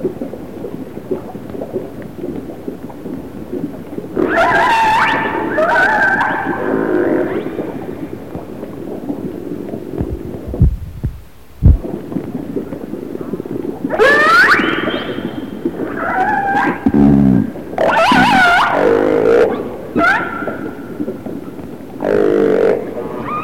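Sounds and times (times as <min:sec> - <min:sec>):
low rumbling water noise: 0:00.0 - 0:23.4
resident orca calls with harmonic squealing tones: 0:04.2 - 0:06.7, 0:13.9 - 0:16.9, 0:17.8 - 0:20.6, 0:23.2 - 0:23.4
short thumps: 0:10.0 - 0:11.9.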